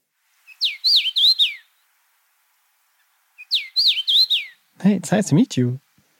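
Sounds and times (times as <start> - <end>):
songbird singing a short bright whistled phrase: 0.5 - 1.7, 3.4 - 4.6
speech: 4.8 - 5.8.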